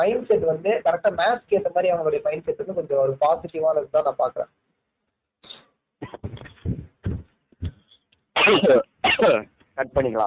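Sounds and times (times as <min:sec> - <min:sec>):
speech: 0:00.0 - 0:04.6, 0:05.4 - 0:06.8, 0:08.4 - 0:10.2
person coughing harshly: 0:06.0 - 0:07.2, 0:08.4 - 0:09.4
person clearing their throat: 0:06.0 - 0:07.3, 0:08.4 - 0:09.4.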